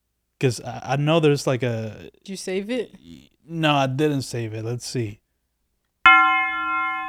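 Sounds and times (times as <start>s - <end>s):
speech: 0.4s - 5.2s
bright bell chime: 6.1s - 7.0s.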